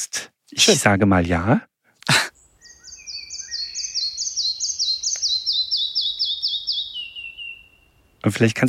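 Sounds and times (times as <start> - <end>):
speech: 0.0 - 1.7, 8.3 - 8.6
flycatcher singing rhythmic bouncing high notes: 2.3 - 8.2.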